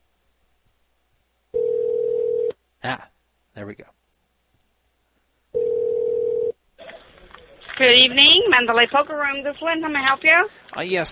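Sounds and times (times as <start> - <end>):
telephone ringing tone on an outgoing call: 1.6 - 2.6, 5.5 - 6.6
speech: 2.8 - 4.0, 7.8 - 11.1.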